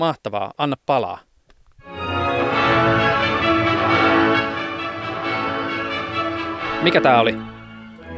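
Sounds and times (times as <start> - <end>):
speech: 0.0 - 2.0, 6.8 - 7.5
anechoic orchestra recording with simulated concert hall acoustics: 1.8 - 8.1.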